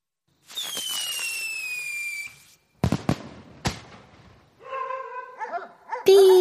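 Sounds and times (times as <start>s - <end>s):
whistling firework lit from a fuse in a flowerpot of soil: 0.4s - 4.0s
firework bangs: 0.4s - 4.6s
neighbourhood dogs barking and whining excitedly: 4.6s - 6.3s.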